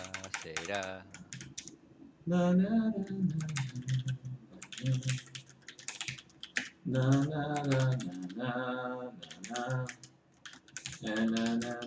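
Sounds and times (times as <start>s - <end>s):
rapid computer keyboard typing: 0.0s - 1.7s, 3.3s - 8.4s, 9.2s - 11.8s
speech: 0.4s - 1.3s, 2.3s - 4.1s, 4.8s - 5.4s, 6.8s - 10.0s, 11.0s - 11.8s.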